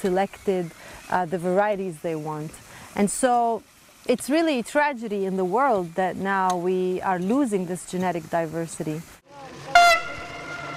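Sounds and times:
speech: 0.0s - 9.2s
low rumble of passing Israeli train on the Jerusalem–Tel Aviv line: 9.3s - 10.7s
short bright train horn blast: 9.7s - 10.7s.

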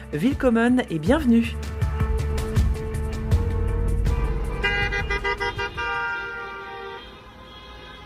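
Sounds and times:
speech: 0.1s - 1.7s
traffic rumble: 2.4s - 8.0s
sustained horn tone: 3.4s - 8.0s
car horns honking: 4.1s - 8.0s.

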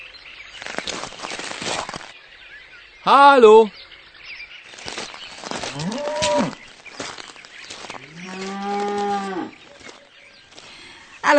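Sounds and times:
faint bird chirps: 0.0s - 11.3s
speech: 3.0s - 3.8s, 5.8s - 6.1s
cow mooing: 5.7s - 6.6s, 8.0s - 9.6s.

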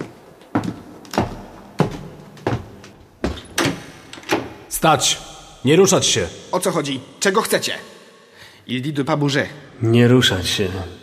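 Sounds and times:
small door unlocked with a key: 3.4s - 4.6s
speech: 4.8s - 7.9s, 8.7s - 11.0s.

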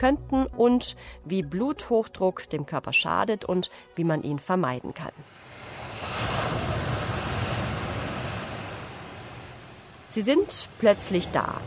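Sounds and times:
speech: 0.0s - 5.4s, 10.1s - 11.6s
ocean waves: 4.9s - 11.6s.

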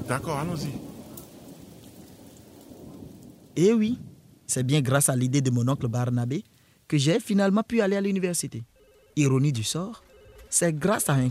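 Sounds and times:
deep constant rumble of thunder: 0.0s - 6.3s
heavy rain: 0.0s - 7.1s
speech: 0.1s - 0.9s, 3.6s - 11.2s.

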